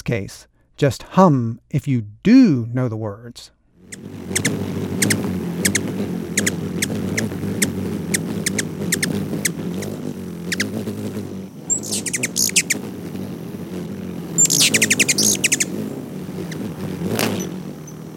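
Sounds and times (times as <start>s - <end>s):
speech: 0.1s - 4.6s
ruby-throated hummingbird buzzy wing beats: 3.8s - 18.1s
ruby-throated hummingbird chirping calls: 3.9s - 18.1s.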